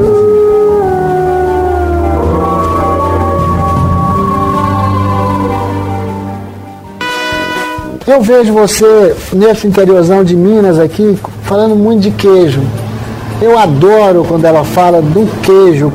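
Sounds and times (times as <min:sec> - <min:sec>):
wolves howling: 0:00.0 - 0:06.5
speech: 0:08.2 - 0:12.8, 0:13.4 - 0:15.9.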